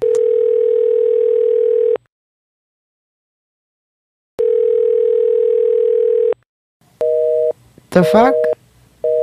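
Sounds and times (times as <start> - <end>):
outgoing telephone ringback tone: 0.0 - 2.0, 4.4 - 6.4, 8.3 - 9.2
speech: 7.9 - 8.5.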